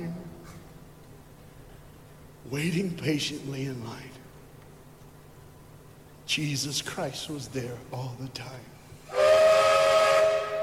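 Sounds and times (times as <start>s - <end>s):
speech: 2.5s - 4.2s, 6.3s - 8.8s
steam train whistle blowing with a breathy hiss: 9.0s - 10.6s.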